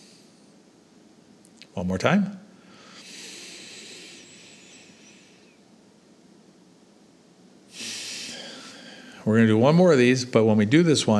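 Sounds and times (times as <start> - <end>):
speech: 1.8 - 2.4, 9.3 - 11.1
deep slow breathing during a warm-up before pickleball: 2.6 - 5.7, 7.7 - 9.3.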